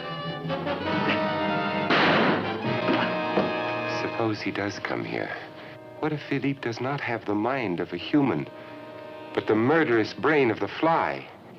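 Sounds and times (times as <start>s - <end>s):
sustained dramatic orchestral music in a movie trailer: 0.0s - 11.2s
loud violent smashing crash in a movie trailer: 1.8s - 3.6s
smaller impact: 1.9s - 3.7s
speech: 4.3s - 8.7s, 9.3s - 11.3s.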